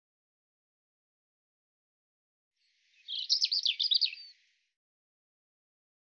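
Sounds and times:
European robin song: 0:02.7 - 0:04.6.

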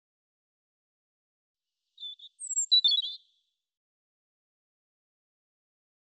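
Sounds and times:
European robin song: 0:02.0 - 0:03.4.

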